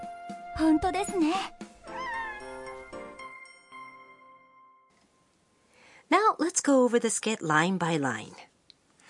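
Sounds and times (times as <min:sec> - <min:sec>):
speech: 0:00.6 - 0:01.6, 0:06.6 - 0:08.5
cat meowing in a cat café: 0:01.9 - 0:02.8.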